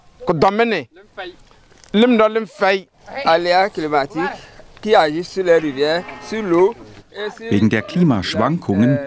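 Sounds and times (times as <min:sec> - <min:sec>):
speech: 0:00.2 - 0:09.0
several cows mooing: 0:03.5 - 0:07.0.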